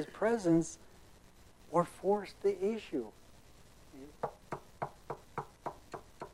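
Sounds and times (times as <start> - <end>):
speech: 0.0 - 0.9, 1.7 - 3.2
sharp knocks on a door: 4.2 - 6.3.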